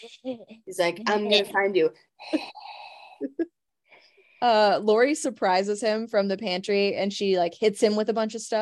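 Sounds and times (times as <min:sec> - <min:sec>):
speech: 0:00.0 - 0:03.6, 0:04.4 - 0:08.6
voice imitating heavy rasping mouth breathing: 0:02.2 - 0:03.4.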